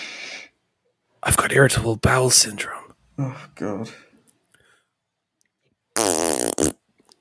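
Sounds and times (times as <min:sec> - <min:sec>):
speech: 0:01.2 - 0:04.1
mouth imitation of a fart, wet raspberry: 0:06.0 - 0:06.9.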